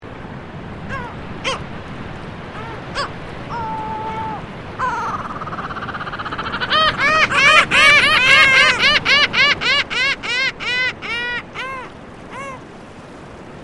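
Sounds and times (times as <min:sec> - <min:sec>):
lava gull: 0:00.9 - 0:01.7, 0:02.6 - 0:12.6.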